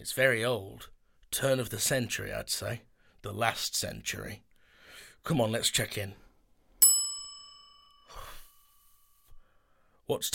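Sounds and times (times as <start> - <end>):
speech: 0.0 - 4.5, 5.2 - 6.2, 10.1 - 10.3
reception desk bell ding: 6.8 - 8.8
soft breathy sigh: 8.0 - 10.0.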